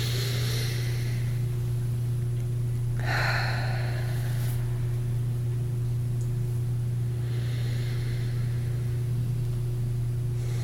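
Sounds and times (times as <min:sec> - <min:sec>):
slow deep breaths in and out: 0:00.0 - 0:01.6, 0:03.0 - 0:04.8, 0:07.1 - 0:09.2, 0:10.3 - 0:10.6
steady low electrical hum: 0:00.0 - 0:10.6.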